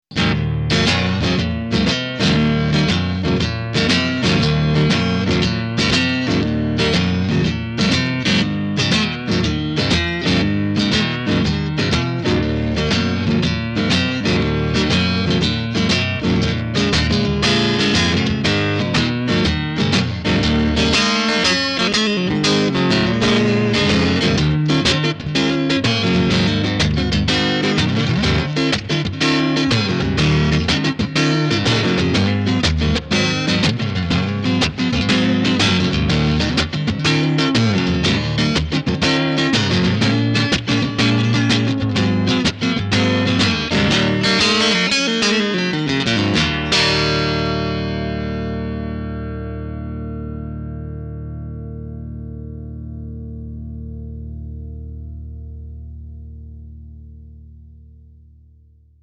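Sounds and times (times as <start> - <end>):
blues guitar through multi-effects: 0.0 - 58.8.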